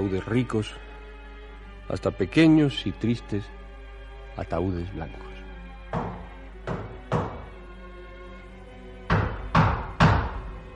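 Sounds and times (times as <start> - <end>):
speech: 0.0 - 0.9, 1.9 - 3.6, 4.4 - 5.3
knocking on the door of a shop stocked with coffins: 5.9 - 7.6, 9.1 - 10.6.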